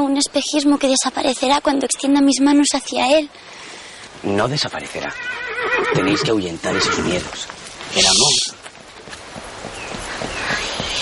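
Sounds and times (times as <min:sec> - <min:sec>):
hiss: 0:00.0 - 0:10.9
speech: 0:00.1 - 0:08.4
horse hooves clip-clopping at a walk: 0:03.7 - 0:10.9.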